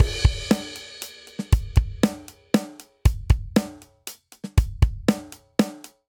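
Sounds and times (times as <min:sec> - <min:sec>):
straight three rock verse MIDI drum beat: 0:00.0 - 0:05.9.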